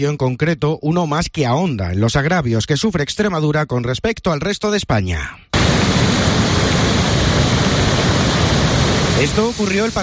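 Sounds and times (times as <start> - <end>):
speech: 0.0 - 6.0, 9.2 - 10.0
torrential storm rain downpour: 5.6 - 10.0.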